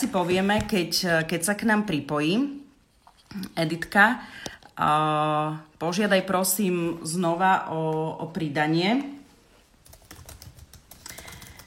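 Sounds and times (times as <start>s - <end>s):
speech: 0.0s - 2.6s, 3.3s - 9.2s
computer keyboard typing a message: 9.8s - 11.6s.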